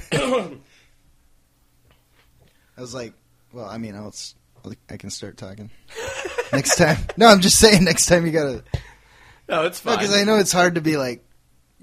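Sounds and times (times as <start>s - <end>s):
throat-clearing cough: 0.0s - 0.6s
speech: 0.1s - 0.8s, 2.8s - 8.9s, 9.5s - 11.8s
laughter: 5.9s - 7.9s.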